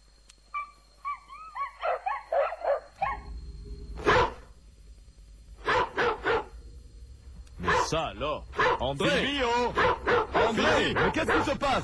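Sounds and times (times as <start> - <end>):
dog barking outside in sharp yips: 0.6 - 3.3, 4.0 - 4.5, 5.6 - 6.6, 7.6 - 11.8
low rumbling noise: 3.0 - 10.1
speech: 7.9 - 11.8.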